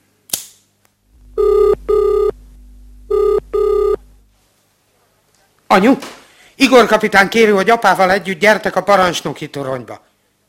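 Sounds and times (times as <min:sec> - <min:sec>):
sharp click: 0:00.3 - 0:00.6
low hum: 0:01.0 - 0:04.6
telephone ringing with bright electronic tone: 0:01.4 - 0:02.4, 0:03.1 - 0:04.0
speech: 0:05.7 - 0:10.1.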